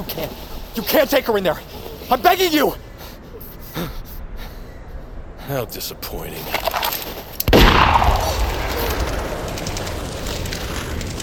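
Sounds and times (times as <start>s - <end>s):
speech: 0.0s - 2.9s, 3.8s - 4.0s, 5.5s - 6.7s
gunshot outdoors in the snow: 7.5s - 10.9s.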